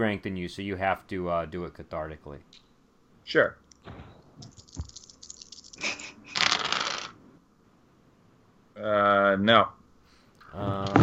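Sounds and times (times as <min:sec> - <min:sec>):
speech: 0:00.0 - 0:04.6, 0:08.8 - 0:09.8, 0:10.5 - 0:11.0
dice rolling on a table during a tabletop roleplaying game: 0:04.4 - 0:07.2.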